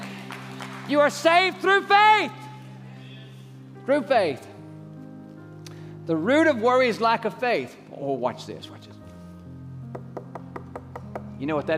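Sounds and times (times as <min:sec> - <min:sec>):
speech: 0:00.9 - 0:02.4, 0:03.9 - 0:04.5, 0:06.1 - 0:08.9, 0:11.4 - 0:11.7
knocking like on a door: 0:10.0 - 0:11.3.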